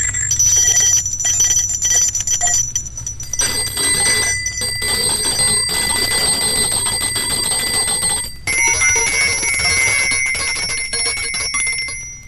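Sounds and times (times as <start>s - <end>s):
very tiny bell ringing: 0.0s - 12.2s.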